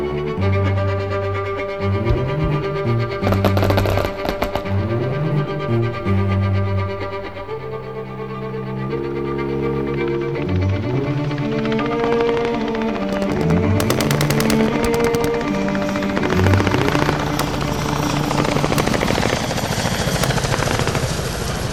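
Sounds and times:
sustained musical tones: 0:00.0 - 0:21.7
helicopter rotor clattering overhead: 0:01.8 - 0:06.3, 0:10.8 - 0:21.7.

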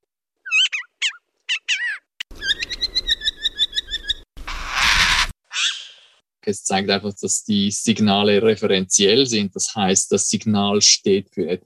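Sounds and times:
Siberian jay alarm calls: 0:00.5 - 0:06.1
speech: 0:06.4 - 0:11.6.

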